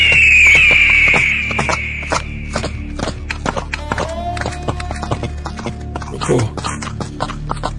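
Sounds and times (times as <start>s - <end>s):
high thin whine: 0.0s - 3.0s
horses' hooves clip-clopping: 0.0s - 7.7s.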